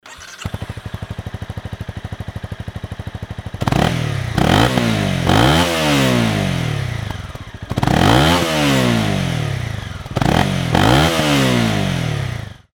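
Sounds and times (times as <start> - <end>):
CB250R motorcycle engine: 0.0 - 12.7.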